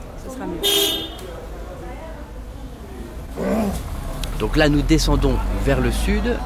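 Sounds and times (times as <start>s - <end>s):
busy crossroads traffic rumbling at Jogiwara Road: 0.0s - 6.4s
speech: 0.3s - 1.6s, 4.4s - 6.4s
car horn honking: 0.6s - 1.4s.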